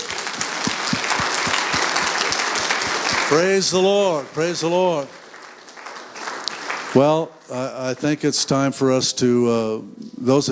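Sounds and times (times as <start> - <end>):
congregation applauding: 0.0 - 7.5
speech: 3.3 - 5.2, 6.9 - 10.5.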